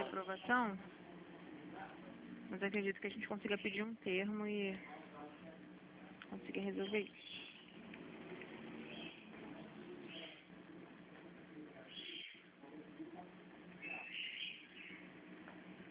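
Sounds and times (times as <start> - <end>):
pet cockatiels and small birds chirping: 0.0 - 0.7, 3.1 - 4.0, 6.4 - 10.5, 11.8 - 12.5, 13.7 - 15.2
low murmuring room background: 0.0 - 15.8
speech: 0.2 - 1.0, 1.8 - 5.0, 6.4 - 7.3.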